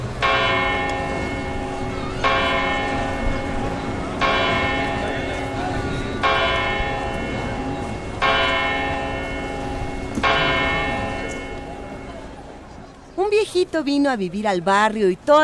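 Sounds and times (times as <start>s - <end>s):
tower clock bell tolling: 0.2s - 12.4s
speech: 13.6s - 15.4s.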